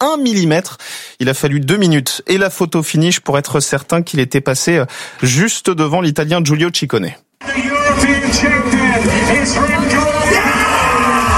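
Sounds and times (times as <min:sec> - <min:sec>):
speech: 0:00.1 - 0:10.6
crowd murmuring: 0:07.4 - 0:10.3
cyclist shouting in joy after winning: 0:09.6 - 0:11.3.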